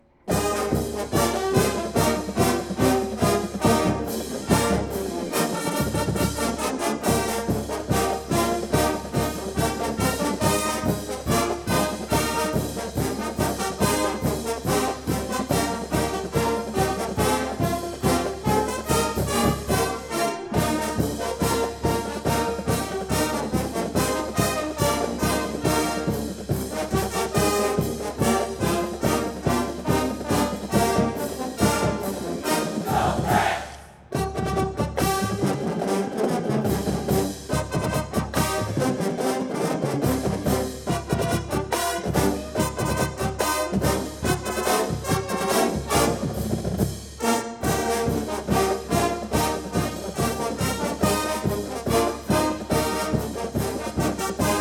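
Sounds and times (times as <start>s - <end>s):
marching band playing a fight song at a recording session: 0.2s - 54.5s.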